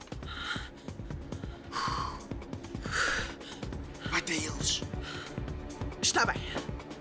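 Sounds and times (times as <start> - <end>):
deep breaths: 0.1 - 4.1, 4.9 - 5.6
speech: 6.2 - 6.6.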